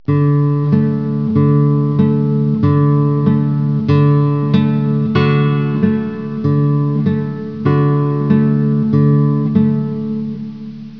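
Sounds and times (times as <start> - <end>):
bass guitar: 0.0 - 10.9.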